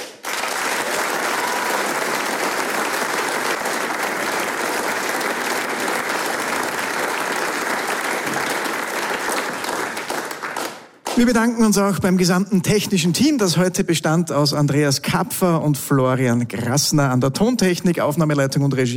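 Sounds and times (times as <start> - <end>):
large audience applause: 0.0 - 11.3
speech: 11.2 - 18.9.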